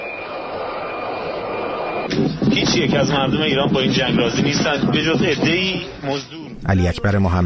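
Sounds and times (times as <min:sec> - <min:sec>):
thin high jet engine whine: 0:00.0 - 0:04.6
Falcon jet engine roar landing at Baghdad airport: 0:00.0 - 0:06.0
speech: 0:02.1 - 0:07.4.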